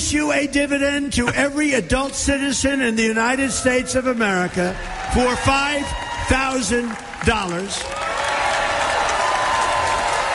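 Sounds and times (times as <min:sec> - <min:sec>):
speech: 0:00.1 - 0:08.1
audience applauding at a political rally: 0:03.6 - 0:10.3.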